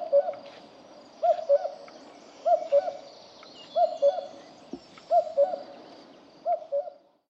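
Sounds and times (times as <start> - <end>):
common cuckoo Cuculus canorus giving two-note falling cu-coo: 0.0 - 0.5, 1.2 - 5.8, 6.4 - 7.1.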